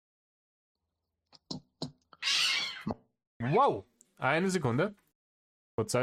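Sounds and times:
cat meowing and yowling: 0:02.2 - 0:02.9
cats hissing and screeching during a scuffle: 0:02.2 - 0:03.6
speech: 0:02.8 - 0:05.0, 0:05.8 - 0:06.0.

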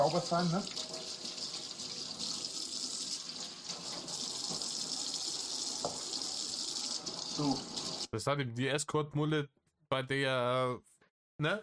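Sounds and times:
speech: 0:00.0 - 0:00.9, 0:07.4 - 0:11.6
running tap water gushing while things are washed: 0:00.0 - 0:08.1.

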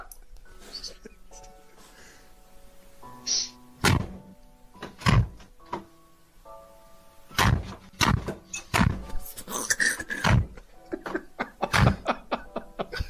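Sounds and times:
door thudding without latching: 0:03.8 - 0:05.9, 0:07.4 - 0:09.2, 0:10.2 - 0:10.6
laughter: 0:10.0 - 0:13.0.

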